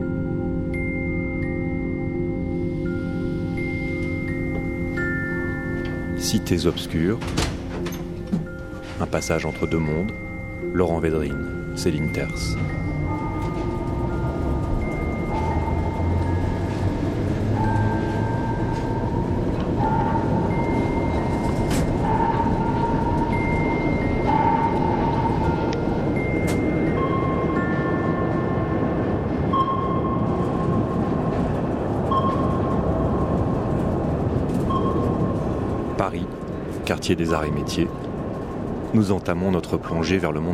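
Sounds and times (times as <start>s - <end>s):
metro train rumbling on an underground line 11 platform: 0.0s - 40.5s
speech: 6.2s - 7.5s, 9.0s - 10.2s, 10.8s - 12.9s, 37.1s - 38.0s, 38.9s - 40.5s.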